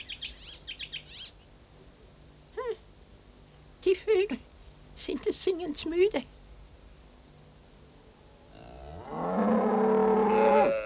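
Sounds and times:
speech: 0:05.0 - 0:06.4
cow mooing on a farm: 0:08.5 - 0:10.8.

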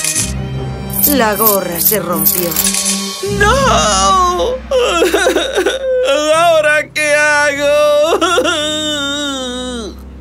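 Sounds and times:
speech: 0:01.0 - 0:07.7
child crying: 0:03.2 - 0:06.6, 0:07.7 - 0:10.0.

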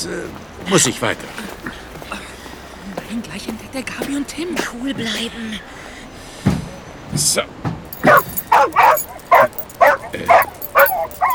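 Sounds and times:
speech: 0:00.0 - 0:01.8, 0:03.1 - 0:05.8, 0:07.1 - 0:07.6, 0:10.1 - 0:10.4
dog barking and whimpering: 0:08.0 - 0:11.3.

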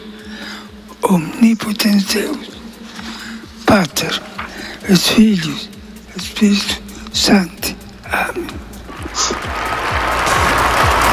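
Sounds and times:
speech: 0:01.1 - 0:02.5, 0:03.7 - 0:09.4
applause from a crowd gathered in St. Peter's Square after the Urbi et Orbi blessing: 0:09.0 - 0:11.1.

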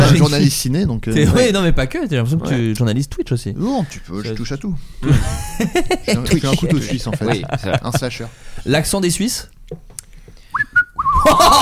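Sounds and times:
speech: 0:00.1 - 0:09.9, 0:10.6 - 0:11.6
laughter: 0:05.0 - 0:08.3, 0:11.2 - 0:11.6
person whistling in place of words: 0:10.5 - 0:11.3.

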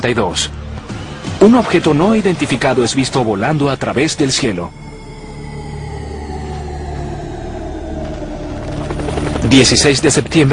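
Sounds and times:
speech: 0:00.0 - 0:00.6, 0:01.4 - 0:04.8, 0:09.5 - 0:10.5
squadron of helicopters flying maneuvers in formation: 0:04.9 - 0:10.5.

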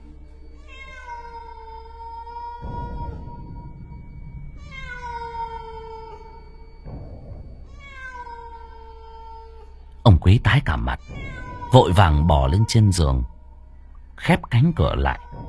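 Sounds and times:
white cat wailing mournfully: 0:00.5 - 0:03.8, 0:04.6 - 0:06.8, 0:07.7 - 0:09.8, 0:10.7 - 0:13.4, 0:14.8 - 0:15.4
speech: 0:10.1 - 0:13.4, 0:14.2 - 0:15.4.

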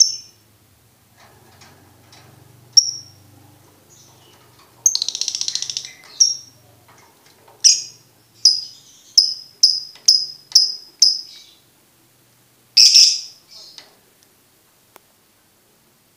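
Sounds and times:
lovebird chirping: 0:00.0 - 0:00.4, 0:02.7 - 0:06.8, 0:07.6 - 0:11.7, 0:12.8 - 0:13.9.

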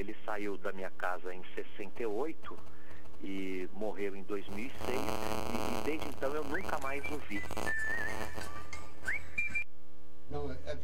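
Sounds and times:
speech: 0:00.0 - 0:08.0
low steady sound: 0:00.0 - 0:10.8
mobile phone whistle ringtone: 0:07.6 - 0:08.4, 0:09.0 - 0:09.7.

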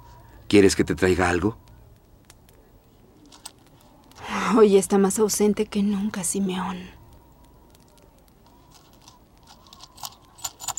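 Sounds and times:
speech: 0:00.5 - 0:01.6, 0:04.6 - 0:07.0
small bag of coins being shaken by hand: 0:08.7 - 0:10.7.

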